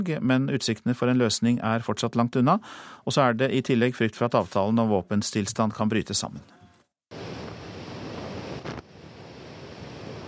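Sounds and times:
speech: 0.0s - 6.6s
steady rushing roar of food aid airdropped from high altitude: 7.1s - 10.2s.

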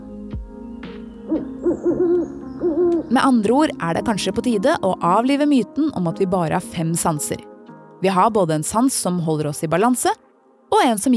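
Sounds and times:
owl hooting: 1.0s - 3.2s
speech: 1.3s - 11.1s.

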